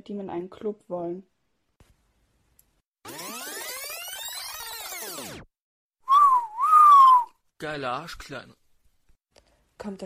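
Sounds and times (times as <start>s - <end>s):
speech: 0.0s - 1.4s, 7.6s - 8.6s, 9.8s - 10.0s
catcalling wolf whistle: 6.0s - 7.4s.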